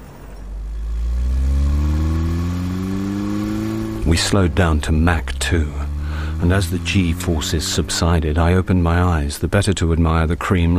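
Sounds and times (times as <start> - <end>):
car engine revving up as the vehicle accelerates: 0.0 - 10.7
speech: 4.1 - 10.7.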